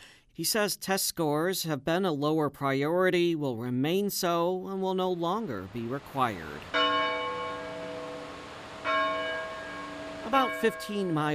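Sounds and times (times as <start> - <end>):
speech: 0.4 - 6.8, 10.3 - 11.3
large college tower bells ringing to mark a class period in Galesburg: 6.7 - 11.3.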